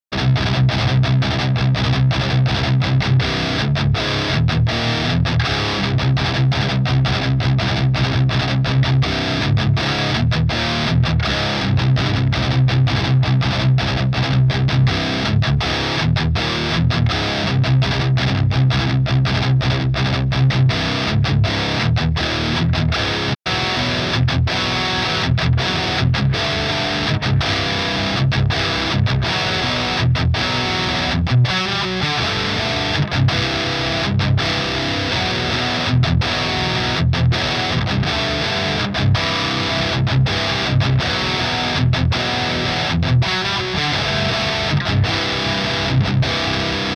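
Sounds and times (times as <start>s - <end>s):
6N2P tube amp cabinet simulation: 0.1s - 46.9s.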